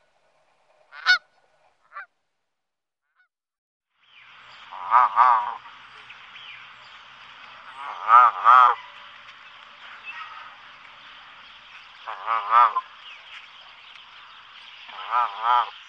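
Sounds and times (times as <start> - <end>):
Canada goose honking: 0.9 - 2.1, 4.7 - 5.7, 7.7 - 9.1, 12.0 - 13.0, 14.9 - 15.8
steady hiss: 4.0 - 15.8.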